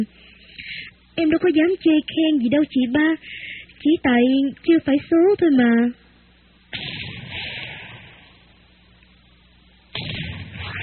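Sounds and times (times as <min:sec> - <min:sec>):
speech: 0:00.0 - 0:00.2, 0:01.2 - 0:06.0
heavy booms of gunfire echoing: 0:06.7 - 0:08.4, 0:09.9 - 0:10.8.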